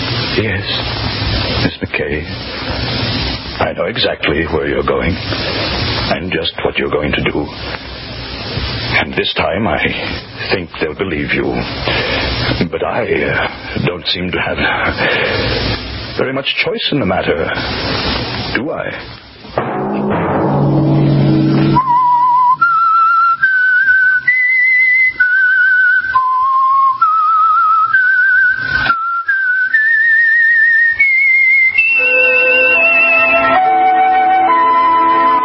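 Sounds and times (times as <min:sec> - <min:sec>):
speech: 0:00.5 - 0:03.0, 0:03.6 - 0:07.9, 0:08.9 - 0:19.2
orchestral music: 0:19.6 - 0:23.2
lone clear whistled signal tune: 0:21.7 - 0:35.4.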